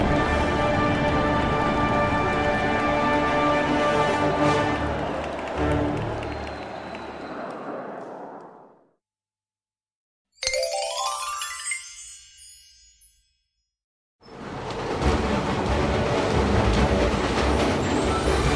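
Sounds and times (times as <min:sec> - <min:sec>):
train rumbling along its rails: 0:00.0 - 0:08.5, 0:14.2 - 0:18.5
ringing chime: 0:10.4 - 0:13.6.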